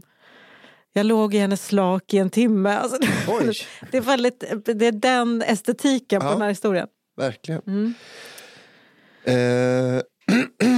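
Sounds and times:
speech: 1.0s - 8.3s, 9.2s - 10.7s
person clearing throat loudly: 9.3s - 10.7s.

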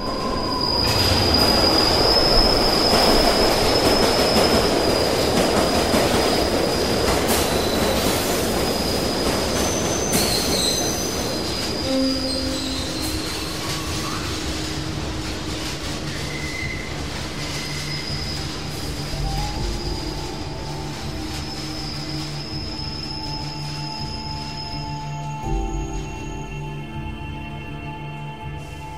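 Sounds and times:
train bursting out of a tunnel: 0.0s - 28.9s
train steel wheels shrieking: 0.0s - 28.9s.

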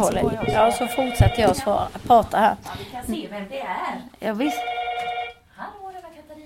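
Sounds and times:
speech: 0.0s - 4.8s
telephone ringing with a call from the reception: 0.4s - 1.8s, 4.4s - 5.5s.

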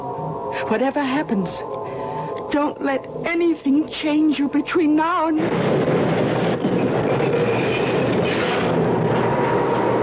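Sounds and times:
subway train rumbling on rails heard from inside the car: 0.0s - 10.0s
speech: 0.6s - 6.2s
faint high-pitched squeals of subway train: 1.6s - 10.0s.

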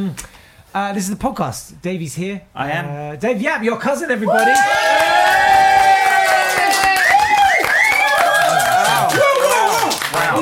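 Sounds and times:
speech: 0.0s - 5.8s
live crowd clapping: 4.3s - 10.4s.

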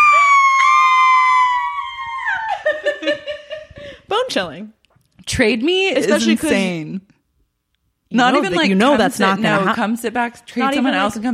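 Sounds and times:
woman screaming high-pitched: 0.0s - 2.9s
speech: 4.4s - 7.1s, 8.1s - 11.3s.

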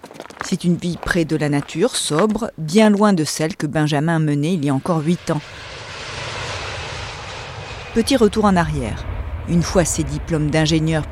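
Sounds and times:
speech: 0.5s - 5.7s, 8.0s - 11.1s
airplane engine roaring while flying overhead: 4.4s - 11.1s.

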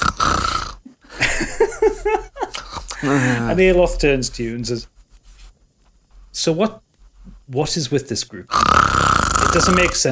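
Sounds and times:
voice imitating high-pitched snoring of a small sleeping creature: 0.0s - 0.8s, 8.5s - 10.1s
laughter: 1.0s - 3.4s
speech: 3.0s - 4.9s, 6.4s - 6.8s, 7.5s - 8.8s, 9.5s - 10.1s.

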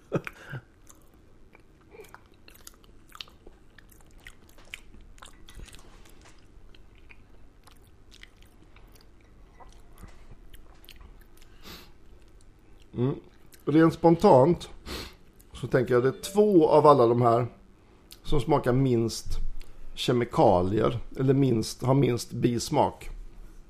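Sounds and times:
person chewing dry instant mashed potato powder from a spoon: 0.2s - 13.7s
steady low hiss: 11.5s - 23.6s
speech: 13.0s - 14.7s, 15.6s - 17.6s, 18.3s - 19.4s, 20.0s - 23.2s.

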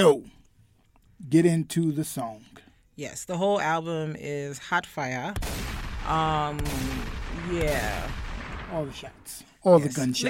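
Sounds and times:
speech: 0.0s - 0.4s, 1.2s - 10.2s
gunshot sound effects inside a song: 5.4s - 9.4s.

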